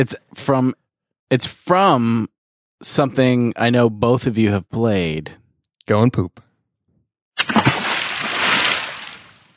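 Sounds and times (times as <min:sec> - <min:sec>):
speech: 0:00.0 - 0:06.5, 0:07.4 - 0:07.7
retro video game water splash sound effect: 0:07.4 - 0:09.5.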